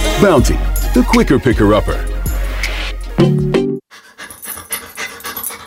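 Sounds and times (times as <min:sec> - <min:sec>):
speech: 0:00.2 - 0:02.2, 0:03.2 - 0:03.4
dog panting: 0:03.9 - 0:05.6.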